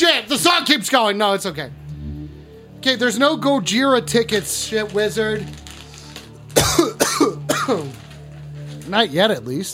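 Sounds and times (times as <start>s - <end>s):
speech: 0.0s - 1.8s, 2.8s - 5.6s, 6.8s - 8.0s, 8.9s - 9.7s
harsh raspy coughs: 6.6s - 7.9s.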